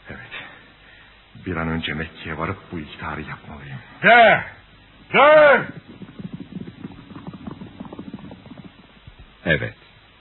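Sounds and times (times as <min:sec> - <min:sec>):
speech: 0:01.4 - 0:05.9, 0:09.4 - 0:09.8
horse galloping at full speed toward the Kaaba in Mecca: 0:05.0 - 0:09.4.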